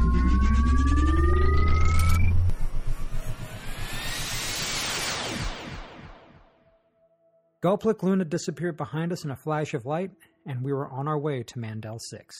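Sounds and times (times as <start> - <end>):
spaceship engines engaging hyperspace with jet-like roar: 0.0 - 6.0
speech: 7.6 - 12.3.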